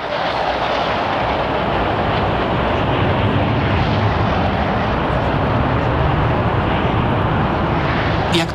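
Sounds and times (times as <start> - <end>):
formation of MiG-21 jet fighters flying overhead: 0.0 - 8.5.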